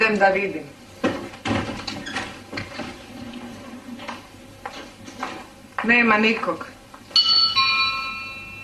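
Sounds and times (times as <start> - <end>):
speech: 0.1 - 0.8, 5.8 - 6.8
two-note ding-dong doorbell chime: 7.2 - 8.6.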